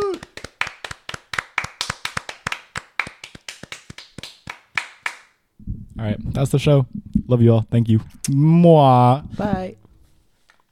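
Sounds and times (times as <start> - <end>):
person whooping: 0.0 - 0.4
brisk sharp hand claps from a small group: 0.0 - 5.4
speech: 6.0 - 9.8.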